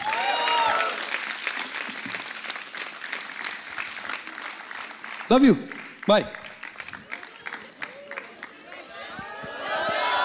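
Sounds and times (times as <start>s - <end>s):
audience cheering: 0.0s - 1.6s, 7.1s - 10.2s
audience applause for a band after its performance: 0.0s - 10.2s
speech: 5.3s - 6.4s.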